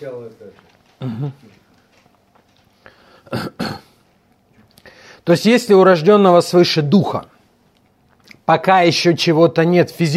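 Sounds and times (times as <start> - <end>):
speech: 0.0 - 1.6, 5.3 - 7.3, 8.5 - 10.1
throat clearing from a dry throat: 1.0 - 1.5, 3.2 - 4.0.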